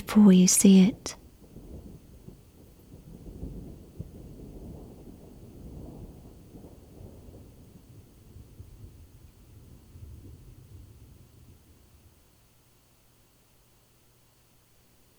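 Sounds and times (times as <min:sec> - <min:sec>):
steady rain in a thunderstorm: 0:00.0 - 0:15.1
speech: 0:00.1 - 0:01.2
long low rumble of rolling thunder in a thunderstorm: 0:01.0 - 0:12.5.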